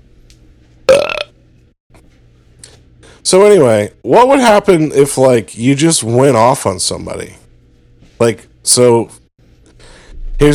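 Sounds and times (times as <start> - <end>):
loud burp with croaky rattle: 0.9 - 1.3
speech: 3.2 - 7.4, 8.2 - 9.2, 10.4 - 10.5.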